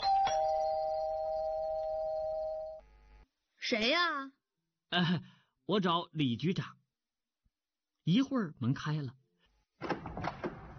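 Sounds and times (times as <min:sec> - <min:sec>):
electronic doorbell ringing: 0:00.0 - 0:02.8
speech: 0:03.7 - 0:06.8, 0:08.0 - 0:09.2.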